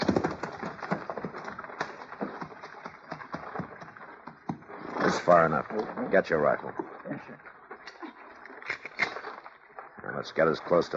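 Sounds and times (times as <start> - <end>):
horses' hooves clopping at a walk off a trail: 0.0 - 10.9
speech: 5.2 - 7.5, 10.2 - 10.9.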